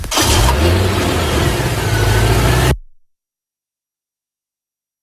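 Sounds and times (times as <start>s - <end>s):
car engine revving and driving away: 0.1s - 2.8s.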